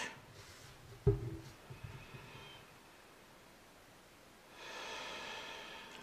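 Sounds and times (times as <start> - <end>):
quiet hiss: 0.0 - 6.0
slow breathing through the nose during a guided meditation: 4.6 - 6.0.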